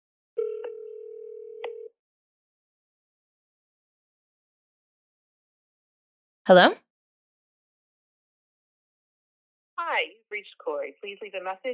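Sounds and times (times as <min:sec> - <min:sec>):
steady clear telephone ringing tone: 0:00.4 - 0:01.9
speech: 0:06.4 - 0:06.8, 0:10.0 - 0:11.7.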